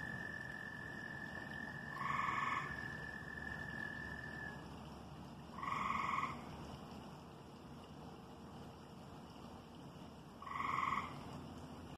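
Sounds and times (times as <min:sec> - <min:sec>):
frog giving short buzzy croaks: 0:00.0 - 0:04.7, 0:05.5 - 0:06.5, 0:10.4 - 0:11.4
steady low background hiss: 0:00.0 - 0:11.9.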